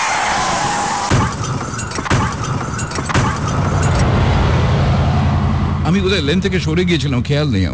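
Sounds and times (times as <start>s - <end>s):
tires skidding: 0.0s - 7.6s
truck slamming into the left side of a car: 0.1s - 5.1s
heavy low rumble: 2.5s - 7.7s
speech: 6.0s - 7.7s.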